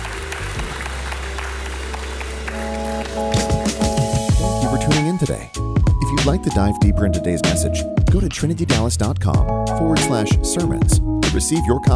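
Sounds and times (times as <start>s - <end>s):
congregation applause: 0.0s - 4.4s
sustained low keyboard chords: 0.0s - 11.9s
speech: 5.2s - 11.9s.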